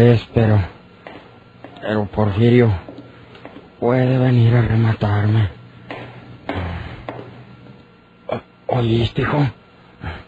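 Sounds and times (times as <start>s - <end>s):
speech: 0.0s - 0.8s, 1.8s - 2.8s, 3.8s - 5.6s, 8.3s - 10.2s
faint low hum: 0.0s - 10.2s
woman's footsteps on a hard floor: 1.0s - 1.9s, 2.8s - 3.8s, 5.9s - 7.5s.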